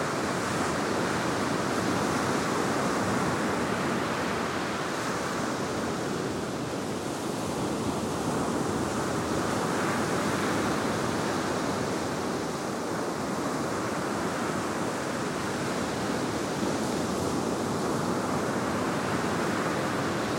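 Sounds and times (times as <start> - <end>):
dense surf roaring on a beach in Japan on a windy day: 0.0 - 20.3.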